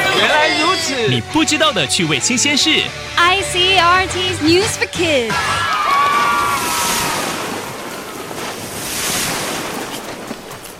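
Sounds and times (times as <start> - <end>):
speech: 0.9 - 5.7
ocean waves breaking: 5.3 - 10.7.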